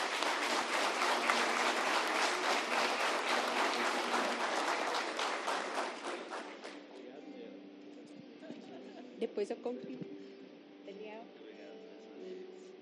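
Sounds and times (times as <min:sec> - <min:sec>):
audience and city councillors applauding warmly in a municipal council chamber: 0:00.0 - 0:06.9
speech: 0:09.2 - 0:10.2.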